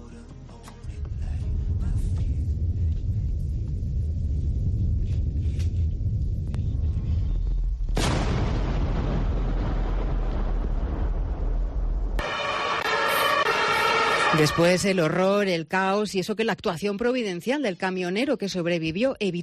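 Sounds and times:
deep rumbling thud caused by a gas leak: 1.1 - 12.2
huge loud explosion with roaring crackling aftermath and ringing tail: 1.5 - 14.4
speech: 14.4 - 19.4.

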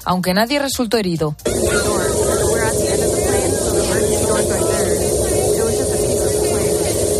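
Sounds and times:
speech: 0.0 - 2.3
Boeing 737 MAX 9 airliner engine noise: 1.4 - 7.1
low hum: 1.4 - 7.1
roar of rushing wind in Boeing 737 MAX 9 cabin after fuselage blowout: 1.5 - 7.1.

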